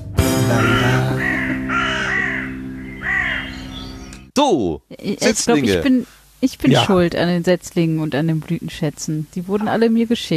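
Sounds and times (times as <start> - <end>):
short music sting with bright rhythmic hits and held chord: 0.2 - 1.7
laughter: 0.3 - 2.1, 5.3 - 5.9, 6.7 - 7.0
crow cawing loudly: 0.4 - 3.9
speech: 4.4 - 10.3.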